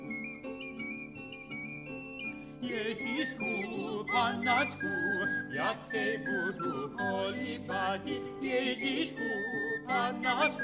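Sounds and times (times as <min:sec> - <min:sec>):
whistle playing notes: 0:00.0 - 0:10.6
speech: 0:02.6 - 0:10.6.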